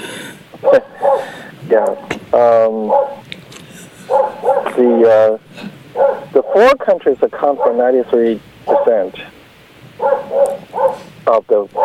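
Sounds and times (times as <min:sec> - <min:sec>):
speech: 0:00.6 - 0:00.9, 0:01.7 - 0:03.2, 0:04.8 - 0:05.7, 0:06.6 - 0:09.4, 0:11.3 - 0:11.8
dog barking outside: 0:00.6 - 0:02.1, 0:02.8 - 0:03.2, 0:04.1 - 0:04.9, 0:06.0 - 0:06.7, 0:07.4 - 0:07.9, 0:08.7 - 0:09.1, 0:10.0 - 0:11.1.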